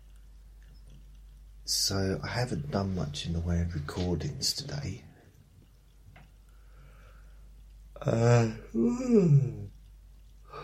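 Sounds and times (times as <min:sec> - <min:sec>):
speech: 0:01.7 - 0:05.1, 0:08.0 - 0:09.7
faint breath: 0:06.5 - 0:07.5, 0:10.4 - 0:10.6
person yawning: 0:08.0 - 0:09.7.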